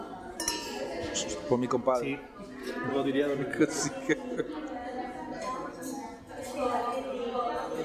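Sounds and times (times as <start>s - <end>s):
soft murmur of voices: 0.0s - 7.8s
glasses clinking in a toast: 0.4s - 1.0s
speech: 1.2s - 4.7s
laughter: 3.3s - 5.0s.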